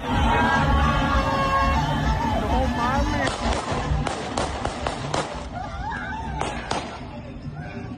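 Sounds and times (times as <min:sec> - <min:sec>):
loud crowd shouting and cheering: 0:00.0 - 0:07.9
sharp gunshots fired into the air: 0:03.2 - 0:05.5.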